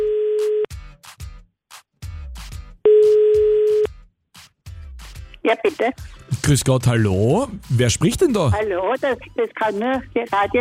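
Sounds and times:
buzzy telephone dial tones for a radio prize call: 0.0 - 0.7, 2.9 - 3.9
speech: 5.4 - 10.5.

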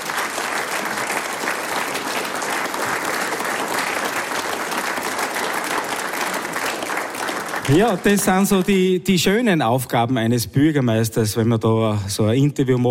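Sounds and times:
audience applause: 0.0 - 9.0
speech: 7.7 - 12.8.

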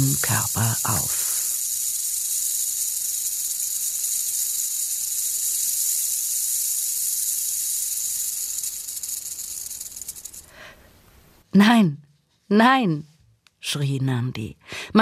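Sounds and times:
speech: 0.0 - 1.2, 11.6 - 15.0
snake hissing: 0.0 - 10.6.

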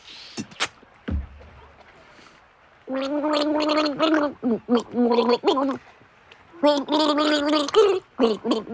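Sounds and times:
person gargling water while voicing a tune: 2.9 - 5.8, 6.6 - 8.7.

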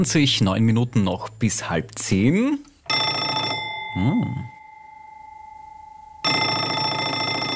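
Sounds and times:
speech: 0.0 - 2.7, 4.0 - 4.5
telephone bell ringing: 2.9 - 7.5
thin steady tone: 3.6 - 6.3.

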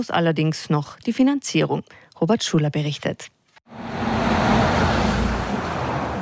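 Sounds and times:
speech: 0.0 - 4.0
road traffic on the Eiberg state road between Kufstein and Schwoich: 3.7 - 6.1.

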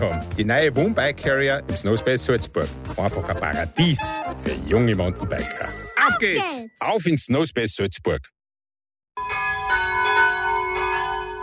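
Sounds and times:
speech: 0.0 - 8.4
bells of a church centre in Fürstenbrunn near Salzburg ringing at noon: 9.2 - 11.4.

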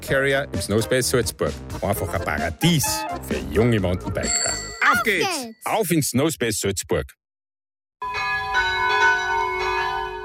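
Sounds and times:
speech: 0.1 - 7.2
church bells ringing at noon: 8.0 - 10.2.

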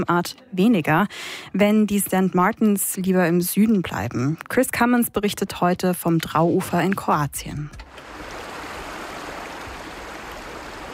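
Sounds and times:
speech: 0.0 - 7.8
Drava River rushing at a riverbank in Delekovec, Croatia: 7.9 - 10.9.

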